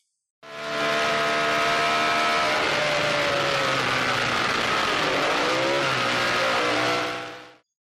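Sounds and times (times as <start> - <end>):
200-horsepower racing car engine roaring while accelerating: 0.4 - 7.6.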